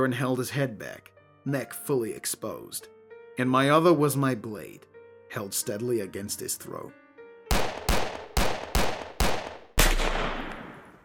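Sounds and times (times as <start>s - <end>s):
speech: 0.0s - 7.0s
sharp gunshots with long ringing decay: 7.5s - 11.0s.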